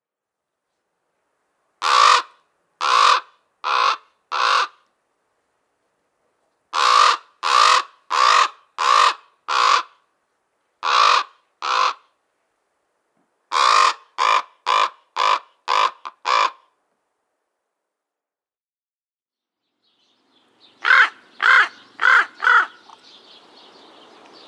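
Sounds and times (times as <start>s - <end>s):
Common raven giving harsh caws: 1.8s - 4.8s, 6.8s - 10.0s, 10.8s - 12.1s, 13.5s - 16.7s, 20.8s - 22.9s.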